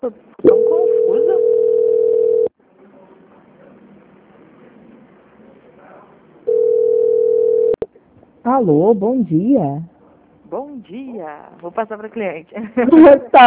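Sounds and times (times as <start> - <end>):
speech: 0.0 - 0.3, 8.5 - 9.9, 10.8 - 13.4
steady telephone tone during a call transfer: 0.5 - 2.5, 6.5 - 7.9.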